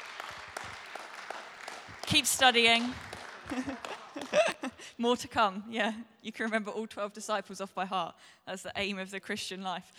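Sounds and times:
soft applause from a small audience: 0.0 - 4.6
speech: 2.1 - 9.9
laughter: 3.3 - 4.9.

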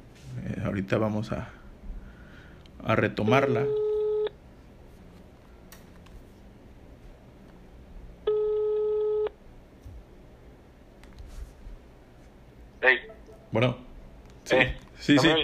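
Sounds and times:
speech: 0.7 - 1.6, 2.8 - 3.8, 13.6 - 13.8, 15.1 - 15.4
telephone busy signal after a dropped call: 3.6 - 4.4, 8.3 - 9.4.

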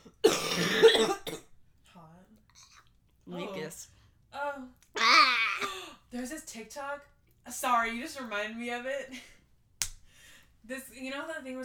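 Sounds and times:
harsh cough: 0.0 - 1.5
speech: 6.2 - 9.4, 10.6 - 11.6.

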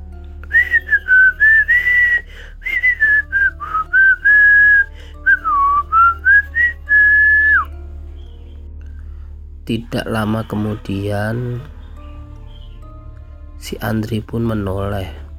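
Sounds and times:
person whistling a tune: 0.4 - 7.8
speech: 9.7 - 11.8, 13.7 - 15.2.

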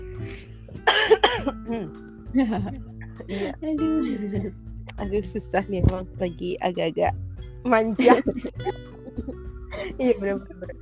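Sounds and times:
person coughing: 0.8 - 1.7
speech: 1.1 - 8.8, 9.9 - 10.8
laughter: 2.4 - 4.5, 8.0 - 10.8.

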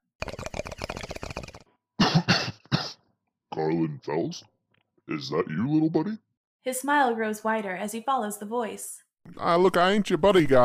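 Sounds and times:
rapid gurgling bubbling pops: 0.2 - 1.6
person coughing roughly: 2.0 - 3.0
speech: 3.6 - 10.6.

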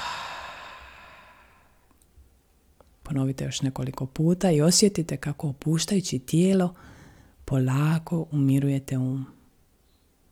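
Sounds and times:
long slow airy exhale through the mouth after a deep breath: 0.0 - 1.8
speech: 3.1 - 9.4.

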